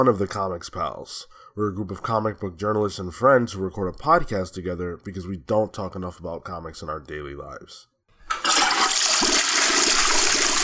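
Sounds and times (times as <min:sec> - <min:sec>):
speech: 0:00.0 - 0:08.5
toilet flushing: 0:08.3 - 0:10.6.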